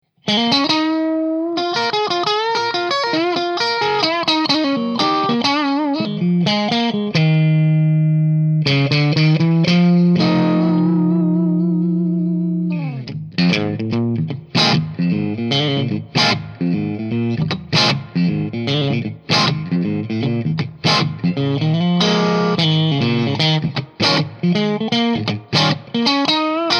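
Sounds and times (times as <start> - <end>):
electric guitar: 0.2 - 26.7.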